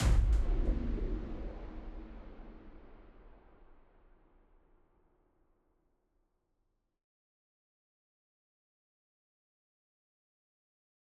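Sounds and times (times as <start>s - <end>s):
low impact: 0.0s - 4.0s.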